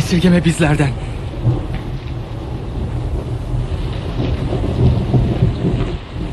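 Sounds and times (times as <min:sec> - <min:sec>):
very heavy rain pouring: 0:00.0 - 0:06.3
wind gusts: 0:00.0 - 0:06.3
speech: 0:00.1 - 0:01.6.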